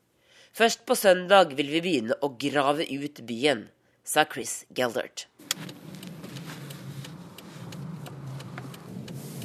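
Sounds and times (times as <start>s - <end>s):
speech: 0.5s - 5.7s
car tires crunching through snow: 5.4s - 9.4s
car without winter tyres engine rumble on a snow-covered road in Washington: 5.4s - 9.4s.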